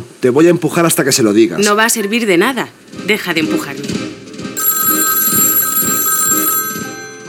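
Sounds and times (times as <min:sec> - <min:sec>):
speech: 0:00.2 - 0:04.0
telephone bell ringing: 0:04.6 - 0:07.2.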